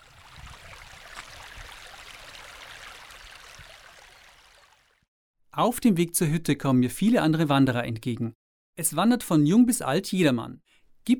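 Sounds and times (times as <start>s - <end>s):
many small mountain streams babbling beside a hiking trail: 0.0s - 5.0s
speech: 5.6s - 11.1s.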